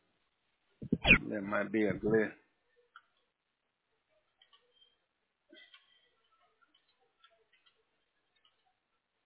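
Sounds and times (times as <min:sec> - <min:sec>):
electronic beep tones from an answering machine: 0:00.9 - 0:01.2
speech: 0:01.3 - 0:02.4.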